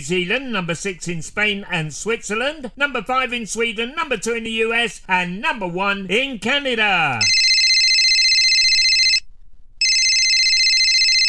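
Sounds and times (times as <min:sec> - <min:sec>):
speech: 0:00.0 - 0:07.4
telephone ringing in long electronic bursts: 0:07.2 - 0:11.2.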